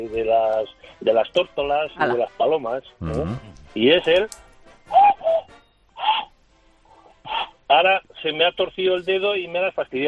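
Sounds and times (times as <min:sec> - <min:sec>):
speech: 0:00.0 - 0:04.4, 0:07.7 - 0:10.0
cuckoo call imitated by blowing into cupped hands: 0:04.9 - 0:06.3.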